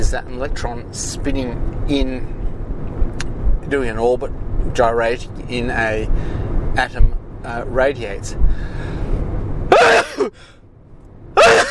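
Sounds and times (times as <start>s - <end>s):
speech: 0.0s - 2.4s, 3.2s - 9.0s, 9.8s - 10.6s
person sneezing: 9.7s - 10.4s, 11.4s - 11.7s.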